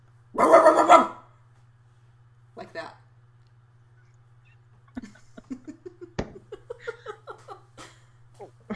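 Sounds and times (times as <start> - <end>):
dog snarling bark: 0.4 - 1.2
laughter: 4.9 - 8.0.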